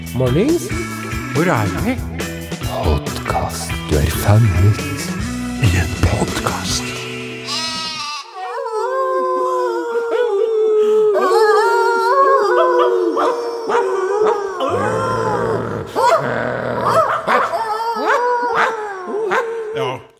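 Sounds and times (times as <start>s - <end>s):
speech: 0.1s - 2.1s, 2.7s - 6.9s
dog howling: 7.6s - 19.9s.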